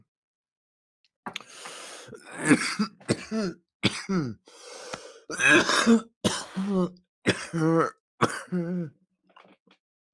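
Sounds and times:
person coughing after smoking from an e-nail rig with a glass banger: 2.3s - 4.4s, 5.3s - 8.9s
throat clearing after smoking: 2.3s - 4.4s, 5.3s - 8.9s.

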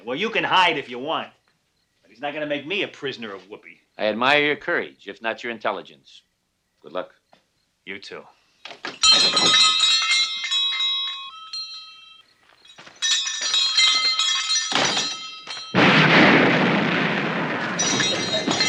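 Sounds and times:
speech: 0.0s - 1.4s, 2.2s - 7.2s, 7.9s - 9.8s
metallic clanging and ringing crashes: 12.9s - 18.6s
loud explosion from an opened file drawer: 15.8s - 18.6s.

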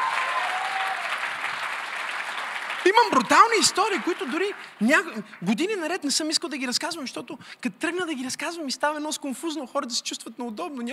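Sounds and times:
congregation applauding during a church service: 0.0s - 5.6s
speech: 2.8s - 10.9s.

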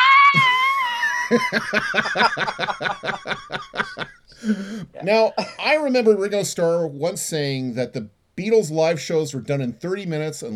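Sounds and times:
single voice imitating an excited concert fan screaming: 0.0s - 0.8s
person laughing in rapid pulsing bursts: 0.3s - 5.6s
speech: 1.3s - 10.5s.

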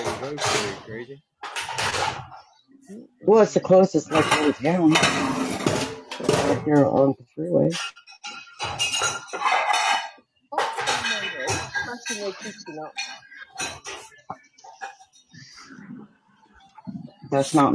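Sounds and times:
plates clattering while being loaded into a dishwasher: 0.0s - 2.4s, 4.0s - 7.1s, 7.7s - 15.2s
speech: 0.2s - 2.2s, 2.9s - 5.4s, 6.5s - 8.0s, 11.9s - 13.1s, 17.3s - 17.7s.

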